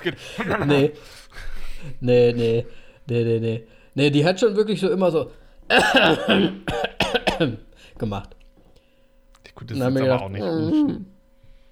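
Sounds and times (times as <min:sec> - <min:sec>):
speech: 0:00.0 - 0:08.4, 0:09.5 - 0:11.1
person imitating harsh throaty coughing: 0:05.7 - 0:07.6.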